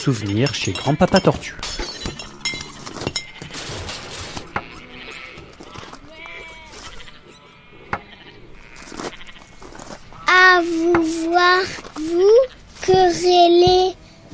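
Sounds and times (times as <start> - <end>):
speech: 0.0 - 2.2, 11.4 - 14.0
sharp clattering knocks and thumps: 0.0 - 7.1, 8.8 - 14.3
pig squealing and grunting on a farm: 0.0 - 10.7
sheep bleating on a farm: 0.0 - 13.2.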